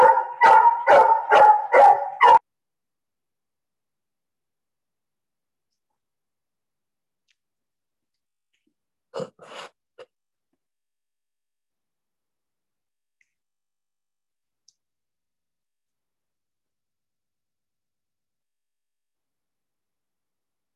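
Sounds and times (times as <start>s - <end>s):
dog barking: 0.0s - 2.4s.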